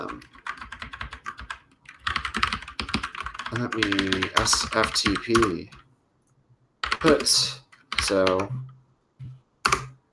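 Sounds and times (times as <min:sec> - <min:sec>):
speech: 0:00.0 - 0:00.3, 0:03.5 - 0:05.8, 0:07.0 - 0:08.7
typing on a computer keyboard: 0:00.0 - 0:05.8, 0:06.8 - 0:08.5, 0:09.7 - 0:10.0.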